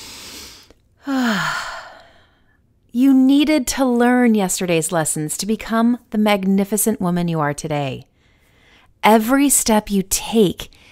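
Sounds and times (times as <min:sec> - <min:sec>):
deep breath in and long voiced exhale: 0:00.0 - 0:02.6
speech: 0:01.0 - 0:01.5, 0:03.5 - 0:08.1, 0:09.0 - 0:10.8.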